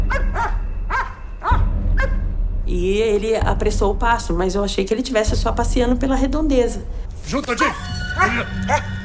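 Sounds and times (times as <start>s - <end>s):
dog barking in short sharp high-pitched yelps: 0.1s - 2.2s, 7.5s - 8.9s
speech: 2.7s - 9.0s.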